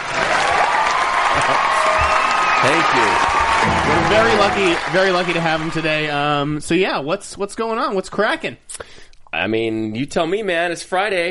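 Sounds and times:
crowd clapping: 0.0s - 6.2s
faint cheer: 0.2s - 5.9s
speech: 2.6s - 11.2s.

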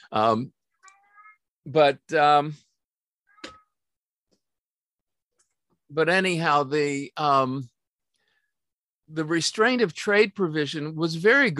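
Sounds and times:
speech: 0.1s - 0.6s, 1.6s - 2.7s, 5.9s - 7.7s, 9.1s - 11.5s
cat meowing: 0.8s - 1.5s, 3.3s - 3.8s.

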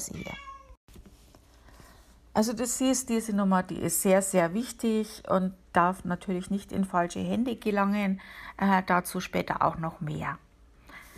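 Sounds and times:
speech: 0.0s - 0.5s, 2.4s - 10.4s
whiny cat meowing: 0.0s - 0.8s.

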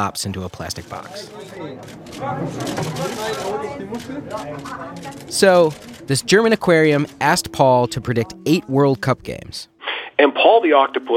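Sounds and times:
speech: 0.0s - 11.1s
media crowd murmuring at a German aquarium: 0.6s - 9.2s
camera shutters clicking: 0.8s - 6.1s.

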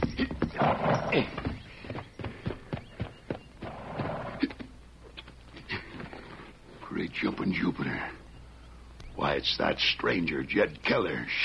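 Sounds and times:
horse hooves clopping as the horse is slowed to a halt: 0.0s - 6.6s
speech: 1.1s - 1.4s, 7.2s - 8.2s, 9.3s - 11.4s.

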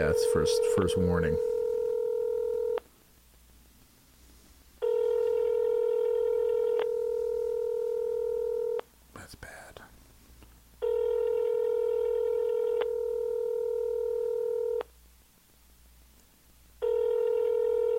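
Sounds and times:
speech: 0.0s - 1.5s
phone line ringback tone from a call to a spoof number: 0.1s - 2.8s, 4.8s - 8.8s, 10.8s - 14.8s, 16.8s - 17.9s.

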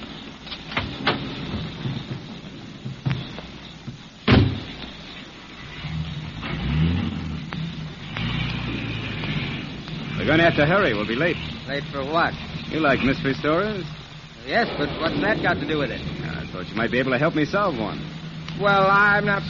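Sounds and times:
car door slamming shut: 4.2s - 4.8s
car engine revving: 5.4s - 19.4s
speech: 10.3s - 19.4s.

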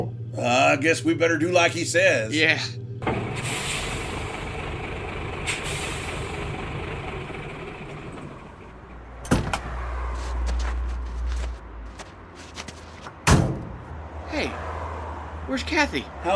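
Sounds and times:
speech: 0.0s - 3.2s, 15.7s - 16.3s
low rumble of idling truck engine: 0.0s - 13.9s
heavy truck doors slamming shut: 9.2s - 10.0s, 13.0s - 13.9s
faint shuffling of people climbing out of truck: 10.0s - 13.1s.

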